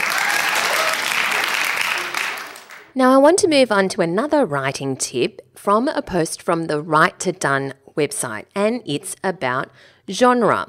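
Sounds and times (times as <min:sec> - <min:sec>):
sizable crowd applauding: 0:00.0 - 0:02.9
speech: 0:03.0 - 0:10.6.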